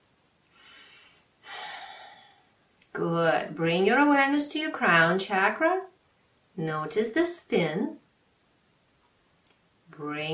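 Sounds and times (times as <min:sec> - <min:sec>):
deep breaths taken during a guided energy meditation: 0:00.4 - 0:02.6
speech: 0:03.0 - 0:05.9, 0:06.6 - 0:08.0, 0:10.0 - 0:10.3.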